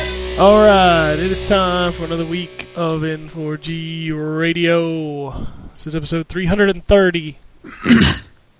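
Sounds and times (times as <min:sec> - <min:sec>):
speech: 0:00.4 - 0:08.5
faint breathy sound: 0:05.3 - 0:05.8
man clearing his throat into a microphone: 0:07.7 - 0:08.3.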